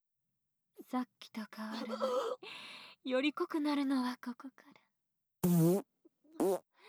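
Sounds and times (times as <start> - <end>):
speech: 0.9 - 4.8
fart inside a box: 5.4 - 5.8, 6.4 - 6.6.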